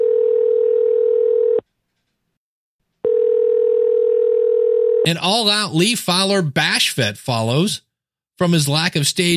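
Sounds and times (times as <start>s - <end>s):
electronic telephone ringback tone: 0.0s - 1.6s, 3.0s - 5.1s
speech: 5.0s - 9.3s.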